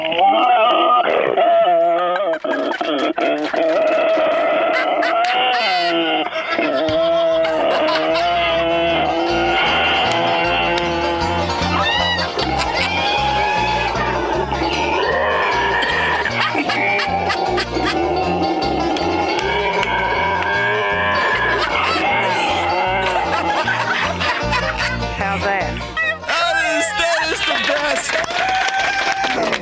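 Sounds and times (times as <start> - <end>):
pig grunting and squealing: 0.0 - 2.3, 3.5 - 23.7
laughter: 0.0 - 29.6.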